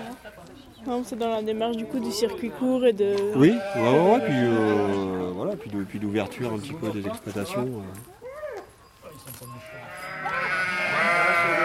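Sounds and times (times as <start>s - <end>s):
speech: 0.8s - 8.1s
flock of ewes and lambs bleating: 3.3s - 5.1s, 9.6s - 11.6s.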